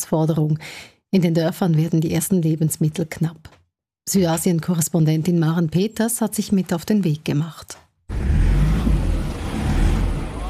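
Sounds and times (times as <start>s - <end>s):
speech: 0.1s - 8.6s
vehicle engine revving hard on a narrow muddy road: 8.1s - 10.4s.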